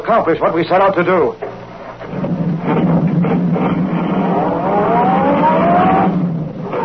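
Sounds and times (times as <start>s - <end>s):
speech: 0.1s - 1.5s, 2.6s - 5.1s
sedan engine roaring while speeding along a concrete road: 1.9s - 6.8s.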